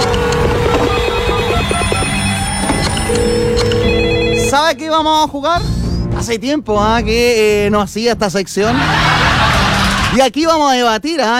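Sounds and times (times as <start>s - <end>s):
telephone ringing: 0.0s - 4.8s
speech: 4.7s - 11.3s
laughter: 8.6s - 10.2s.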